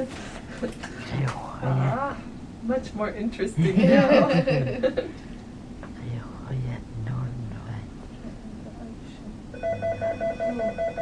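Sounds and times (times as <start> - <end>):
speech: 0.0 - 5.3
laughter: 3.6 - 5.2
mobile phone ringing: 9.6 - 11.0.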